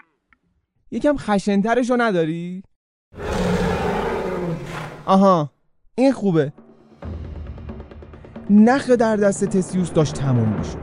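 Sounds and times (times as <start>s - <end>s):
speech: 0.9s - 3.2s, 5.1s - 6.6s, 8.5s - 10.8s
deep fierce gravelly monster roar: 3.2s - 5.2s.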